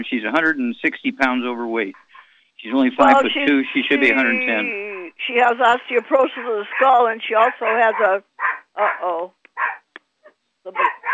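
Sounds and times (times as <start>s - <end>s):
speech: 0.0s - 9.4s, 10.6s - 11.0s
laughter: 2.7s - 5.0s, 5.9s - 8.1s
dog barking: 6.7s - 9.0s, 9.6s - 9.9s, 10.7s - 11.1s.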